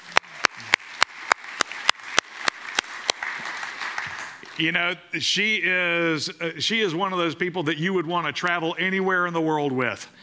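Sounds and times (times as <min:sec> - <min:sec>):
audience applause for a team member: 0:00.0 - 0:04.7
speech: 0:04.6 - 0:10.2.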